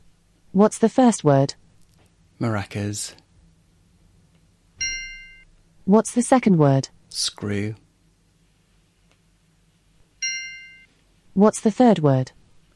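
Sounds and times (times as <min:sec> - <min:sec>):
faint low hum: 0:00.0 - 0:12.7
speech: 0:00.6 - 0:01.6, 0:02.4 - 0:03.2, 0:05.9 - 0:07.8, 0:11.4 - 0:12.4
single bright metallic bell ding used as a cue in a word-memory game: 0:04.8 - 0:05.4, 0:10.2 - 0:10.9.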